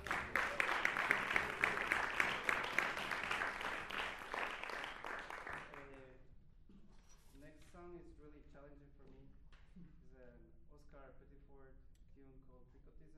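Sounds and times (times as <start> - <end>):
crowd clapping: 0.0 - 6.0.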